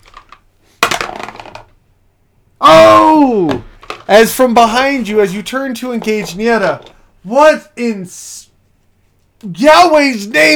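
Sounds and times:
dice rolling on a hard tabletop: 0:00.0 - 0:01.8, 0:03.1 - 0:07.0
speech: 0:04.1 - 0:08.5, 0:09.4 - 0:10.5.

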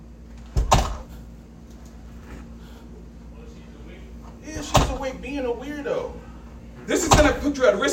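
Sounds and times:
door shoved against a latch: 0:00.5 - 0:01.1, 0:04.6 - 0:05.1, 0:07.0 - 0:07.5
speech: 0:05.0 - 0:06.3, 0:06.9 - 0:07.9.

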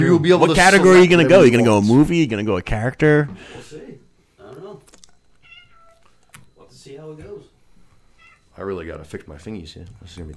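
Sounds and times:
speech: 0:00.0 - 0:03.8, 0:08.6 - 0:10.3
cat meowing: 0:05.4 - 0:06.2, 0:08.1 - 0:08.6.

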